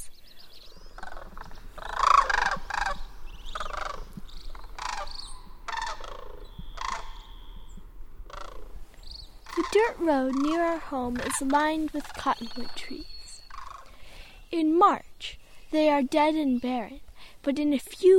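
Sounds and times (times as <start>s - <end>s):
migrating sandhill cranes giving rolling rattling calls in the fall: 0.7s - 14.4s
speech: 9.7s - 13.1s, 14.5s - 18.1s.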